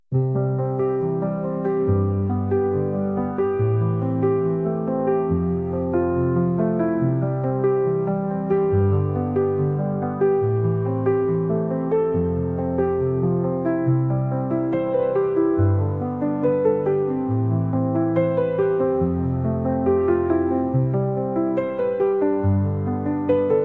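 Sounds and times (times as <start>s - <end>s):
piano logo jingle: 0.1s - 23.6s.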